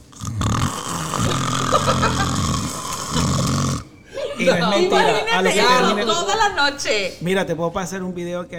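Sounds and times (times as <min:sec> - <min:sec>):
person vocally imitating loud rattling snoring: 0:00.0 - 0:03.9
laughter: 0:01.2 - 0:03.5, 0:04.1 - 0:06.5
speech: 0:04.4 - 0:08.5.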